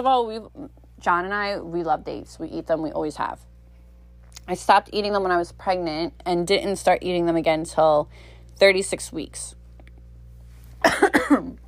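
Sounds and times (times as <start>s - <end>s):
speech: 0.0s - 3.5s, 4.5s - 9.6s, 10.8s - 11.6s
dry coughs: 10.8s - 11.6s.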